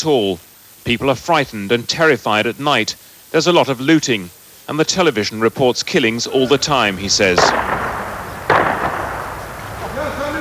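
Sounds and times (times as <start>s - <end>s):
speech: 0.0s - 7.7s
outdoor noise: 0.0s - 10.4s
laughter: 6.1s - 8.5s, 9.2s - 10.4s
gunshot echoing across a city: 7.2s - 10.4s.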